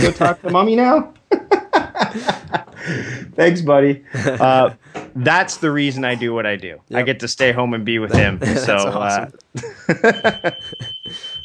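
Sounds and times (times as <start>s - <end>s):
speech: 0.0s - 1.2s, 2.1s - 11.4s
laughter: 0.0s - 3.3s, 4.0s - 4.8s, 5.6s - 6.4s, 8.1s - 11.4s
home smoke alarm going off: 9.9s - 11.4s.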